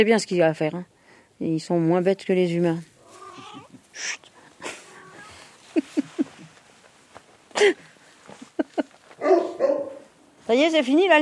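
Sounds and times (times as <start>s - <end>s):
speech: 0.0s - 2.9s, 4.0s - 4.3s, 7.6s - 7.8s, 10.5s - 11.1s
dog yelping: 3.0s - 3.8s, 4.7s - 5.5s, 9.2s - 10.1s
dog barking: 9.2s - 10.1s.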